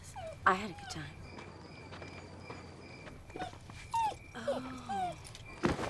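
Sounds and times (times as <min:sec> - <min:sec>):
young woman greeting a puppy: 0:00.0 - 0:01.3
puppy whimpering and yipping: 0:00.2 - 0:00.9, 0:03.4 - 0:05.3.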